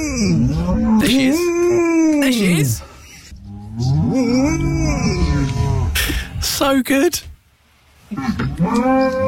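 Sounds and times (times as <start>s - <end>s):
speech: 0.0s - 1.6s, 6.7s - 7.3s, 8.1s - 9.2s
herd of cows mooing in a field on a farm: 0.0s - 2.2s, 3.3s - 6.3s, 8.2s - 9.2s.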